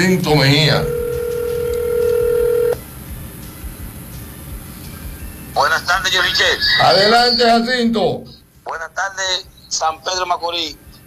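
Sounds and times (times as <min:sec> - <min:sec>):
speech: 0:00.0 - 0:01.0, 0:06.1 - 0:10.8
low hum of telephone line noise: 0:00.0 - 0:11.0
telephone tone as a caller dials in: 0:00.5 - 0:02.8.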